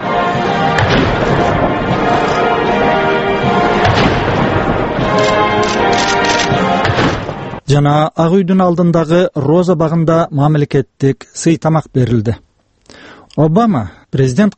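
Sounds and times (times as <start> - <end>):
artillery guns firing a salute during a welcome ceremony at the White House: 0.0 - 7.3
speech: 7.7 - 14.5.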